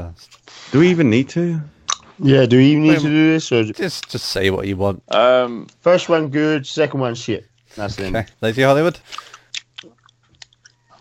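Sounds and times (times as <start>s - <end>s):
speech: 0.0s - 9.3s
person chewing with mouth open: 9.1s - 11.0s.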